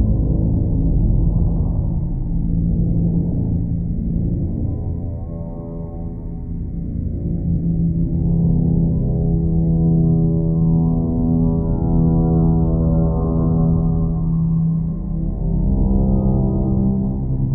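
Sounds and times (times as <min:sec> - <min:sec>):
creepy low dark gong-like drone: 0:00.0 - 0:17.5.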